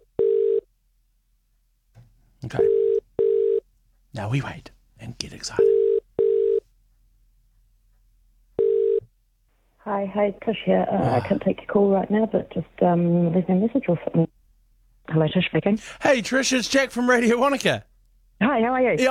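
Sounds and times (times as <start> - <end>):
telephone ringback tone on outgoing call: 0.2 - 0.6, 2.6 - 3.6, 5.6 - 6.6, 8.6 - 9.0
speech: 2.4 - 2.8, 4.2 - 5.8, 9.8 - 14.4, 15.1 - 19.0.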